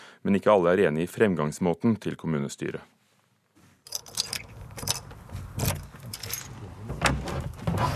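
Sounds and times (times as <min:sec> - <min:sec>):
speech: 0:00.2 - 0:03.0
keys jangling and scraping in a lock: 0:03.9 - 0:06.6
door of a historic farm and writer's study in Grimstad Norway creaking open: 0:03.9 - 0:07.9
metallic rattles and thumps: 0:03.9 - 0:07.9.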